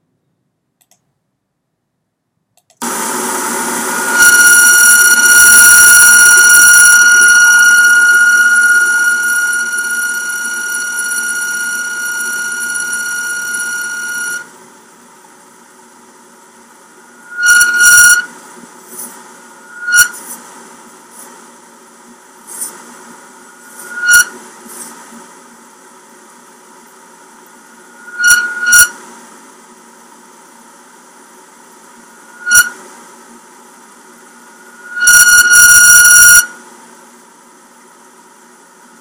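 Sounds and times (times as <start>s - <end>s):
window air conditioner whistling squeal: 3.9s - 14.5s, 17.1s - 18.3s, 19.6s - 20.2s, 23.5s - 24.4s, 27.8s - 29.0s, 32.1s - 32.8s, 34.5s - 36.6s.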